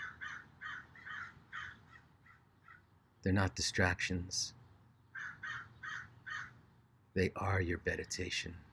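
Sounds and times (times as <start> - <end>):
crow cawing harshly: 0.0 - 2.9, 5.1 - 6.6
speech: 3.2 - 4.6, 7.2 - 8.7.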